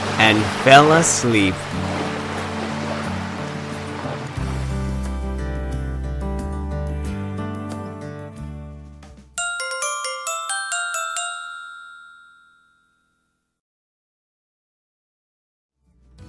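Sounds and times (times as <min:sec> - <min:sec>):
sea waves washing on shore: 0:00.0 - 0:04.8
sustained gentle music: 0:00.0 - 0:12.9
speech: 0:00.2 - 0:02.0
bright chiming notes: 0:09.4 - 0:12.9.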